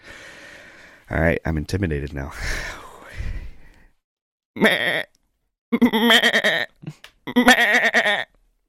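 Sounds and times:
soft breathy noise: 0.0 - 1.1, 2.3 - 4.0
speech: 1.1 - 2.8, 4.6 - 4.8
person imitating wavering nasal sheep bleats: 4.6 - 5.2, 5.8 - 8.4.

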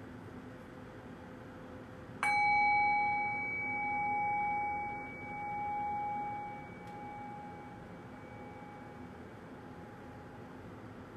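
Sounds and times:
meditation bell struck and ringing: 2.2 - 10.5.

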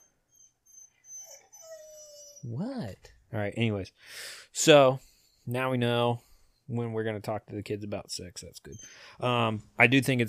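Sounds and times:
dog lying down barking and whining: 0.0 - 2.8
speech: 2.4 - 10.2.

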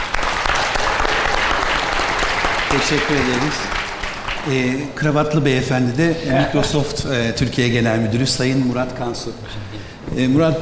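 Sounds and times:
audience applause at a business panel event: 0.0 - 4.9
speech: 2.7 - 3.8, 4.4 - 10.6.

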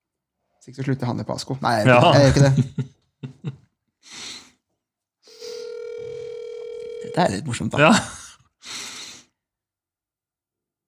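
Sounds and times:
speech: 0.6 - 3.6, 7.2 - 8.2
laughter: 1.9 - 3.6
outgoing phone call ringing tone: 5.3 - 7.4.

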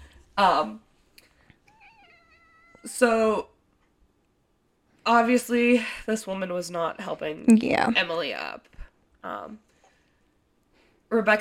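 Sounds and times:
speech: 0.4 - 0.8, 2.8 - 3.5, 5.0 - 9.6, 11.1 - 11.3
cat meowing: 1.7 - 3.0.

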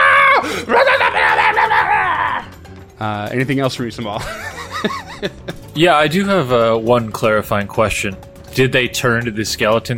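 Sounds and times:
voice imitating a creature's high strained scream: 0.0 - 2.5
laughter: 0.4 - 2.5, 4.2 - 5.8
speech: 3.0 - 9.9.

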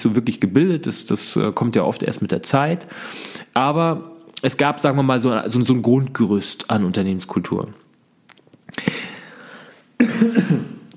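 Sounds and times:
speech: 0.0 - 7.9
person coughing harshly: 10.0 - 10.9.

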